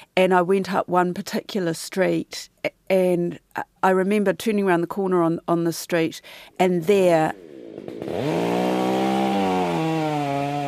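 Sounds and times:
speech: 0:00.2 - 0:08.6
chainsaw cutting into a large kauri tree on a road: 0:07.3 - 0:10.6.

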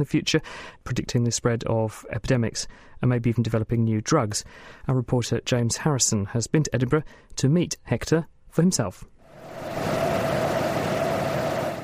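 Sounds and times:
speech: 0:00.0 - 0:10.0
supercomputer cooling system hum: 0:09.3 - 0:11.8.

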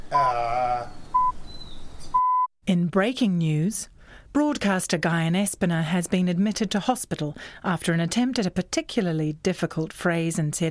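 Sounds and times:
short thin bird chirps: 0:00.2 - 0:02.4
speech: 0:02.7 - 0:10.6.

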